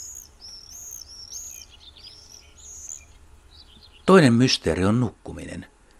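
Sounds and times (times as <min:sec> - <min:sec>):
common swifts screeching: 0:00.0 - 0:04.2
speech: 0:04.1 - 0:05.7.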